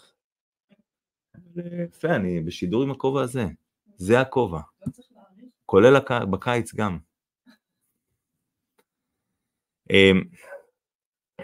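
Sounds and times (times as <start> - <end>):
speech: 1.6 - 5.1, 5.7 - 7.1, 9.9 - 10.6
dog barking: 10.4 - 10.8.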